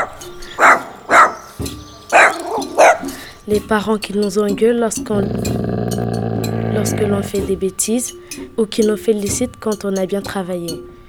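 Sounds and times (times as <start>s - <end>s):
dog barking: 0.0s - 3.5s, 5.0s - 7.4s
faint hum: 0.0s - 11.0s
speech: 3.5s - 5.7s, 6.8s - 10.9s.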